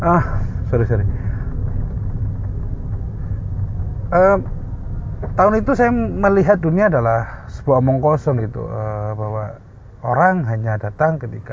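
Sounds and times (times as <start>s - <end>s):
speech: 0.0s - 1.3s, 4.1s - 4.6s, 5.4s - 8.8s, 10.0s - 11.5s
car engine rumble as a car passes by outside: 0.0s - 8.7s.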